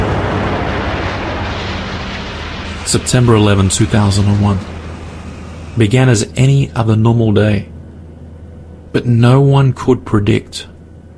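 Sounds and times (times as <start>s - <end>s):
loud steady roar from an explosion: 0.0s - 8.4s
speech: 2.9s - 4.8s, 5.8s - 7.7s, 8.9s - 10.7s.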